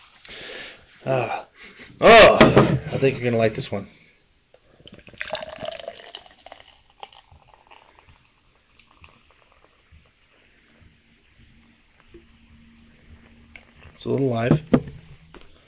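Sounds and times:
speech: 1.0s - 1.4s, 2.0s - 4.0s, 14.1s - 14.7s
fizzy watermelon beer pouring into a cup: 4.9s - 10.3s.

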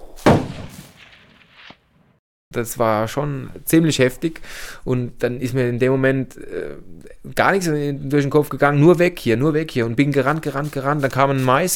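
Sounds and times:
faint thud: 0.2s - 1.8s
gunshot with rumbling echo: 0.2s - 2.2s
speech: 2.6s - 11.7s.

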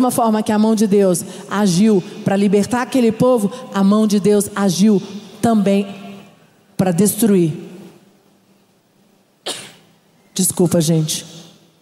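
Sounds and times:
speech: 0.0s - 6.0s, 6.8s - 7.6s, 10.4s - 11.3s
person sneezing: 9.4s - 9.9s.

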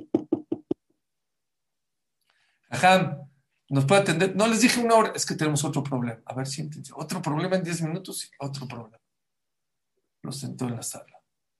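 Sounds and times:
knocking on a door: 0.0s - 0.8s
speech: 2.7s - 9.0s, 10.2s - 11.2s.

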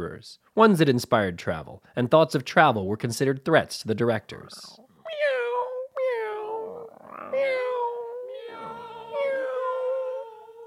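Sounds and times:
speech: 0.2s - 4.8s
cat meowing: 5.1s - 10.6s.

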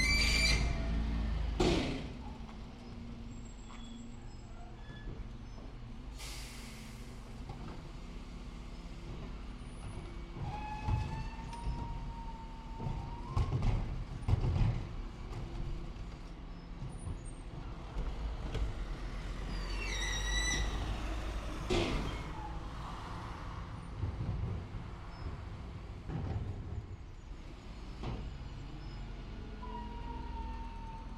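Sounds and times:
bin lorry driving down a residential street during refuse collection: 0.0s - 31.1s.

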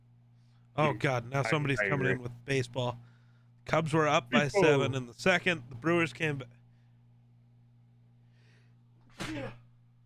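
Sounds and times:
low hum: 0.0s - 10.0s
speech: 0.8s - 3.1s, 3.7s - 6.6s, 9.3s - 9.6s
person sneezing: 9.1s - 9.7s.

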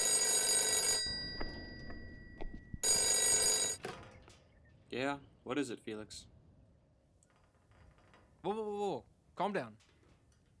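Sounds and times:
old-fashioned telephone bell ringing: 0.0s - 3.8s
speech: 4.9s - 6.4s, 8.4s - 9.9s.

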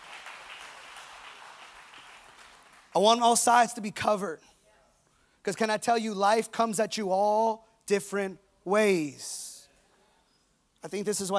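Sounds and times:
crowd applauding: 0.0s - 3.0s
speech: 3.0s - 4.5s, 5.5s - 9.5s, 10.8s - 11.3s.

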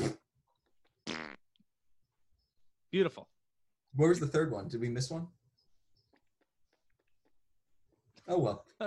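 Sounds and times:
people imitating fart noises with mouths: 0.0s - 0.3s, 1.0s - 1.6s
speech: 2.9s - 5.4s, 8.2s - 8.8s.

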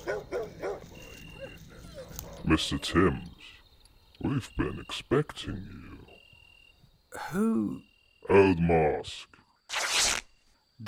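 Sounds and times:
dog barking loudly: 0.0s - 0.9s
speech: 2.5s - 3.3s, 4.2s - 6.0s, 7.1s - 9.8s.

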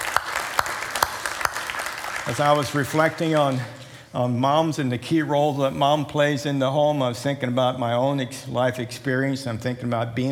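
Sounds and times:
audience applauding: 0.0s - 4.0s
speech: 2.3s - 10.3s.

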